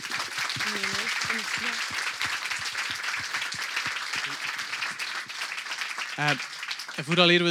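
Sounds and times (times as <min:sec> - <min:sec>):
audience applause at an evening event: 0:00.0 - 0:07.5
speech: 0:06.2 - 0:07.5.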